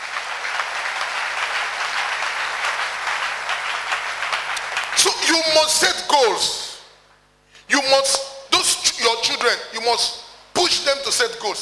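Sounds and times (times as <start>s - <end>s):
crowd applauding: 0.0s - 5.4s
speech: 5.0s - 6.6s, 7.7s - 8.3s, 9.0s - 11.6s.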